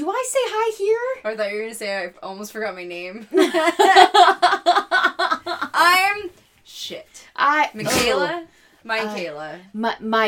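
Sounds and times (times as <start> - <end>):
speech: 0.0 - 4.9, 5.8 - 10.2
dog sneezing: 7.8 - 8.4.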